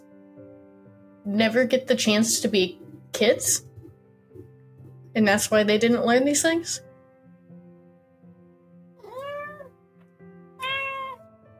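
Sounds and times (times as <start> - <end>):
speech: 1.2 - 3.7, 5.2 - 6.9
forest cat meowing: 9.0 - 9.7, 10.6 - 11.2.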